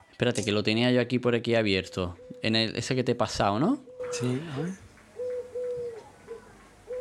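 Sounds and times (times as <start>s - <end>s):
speech: 0.2s - 4.8s
pigeons cooing: 1.7s - 2.9s, 3.6s - 6.9s.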